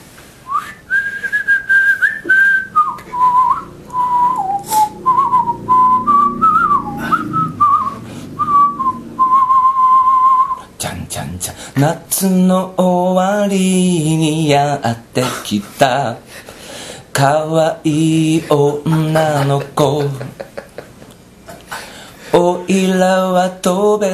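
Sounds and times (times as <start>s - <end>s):
person whistling a melody: 0.4s - 10.7s
speech: 11.8s - 16.5s, 17.2s - 20.6s, 22.3s - 24.1s
laughter: 18.5s - 21.9s.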